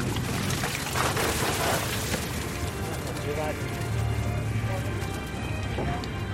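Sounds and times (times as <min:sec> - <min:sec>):
wet splashing of a fish catch spilling onto a boat deck: 0:00.0 - 0:05.4
water pouring from a fishing net cod end onto a boat deck: 0:00.0 - 0:06.2
speech: 0:03.4 - 0:03.8.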